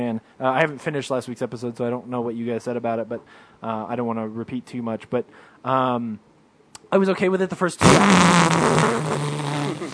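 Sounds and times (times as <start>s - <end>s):
speech: 0.0s - 6.3s, 6.9s - 9.6s
person farting: 7.8s - 9.9s.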